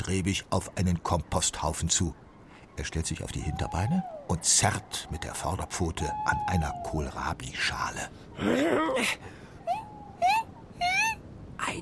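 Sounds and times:
speech: 0:00.1 - 0:02.2, 0:02.8 - 0:09.4
whimpering vocal sound: 0:04.9 - 0:11.2.

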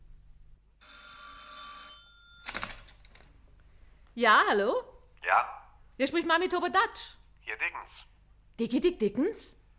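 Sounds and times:
telephone bell ringing for a long-distance call: 0:00.8 - 0:02.7
speech: 0:04.2 - 0:09.6.

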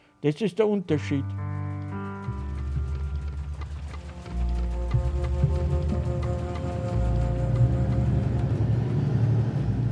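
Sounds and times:
speech: 0:00.2 - 0:01.4
loud low-pitched engine rumble inside a moving vehicle: 0:02.3 - 0:09.9.

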